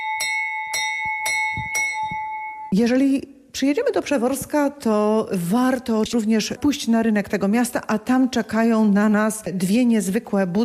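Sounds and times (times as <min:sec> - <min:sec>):
fire station bell clanging: 0:00.0 - 0:02.8
speech: 0:02.7 - 0:10.6.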